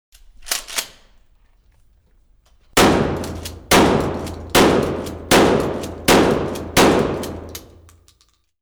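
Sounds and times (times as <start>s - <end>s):
rifle firing: 2.8s - 7.9s.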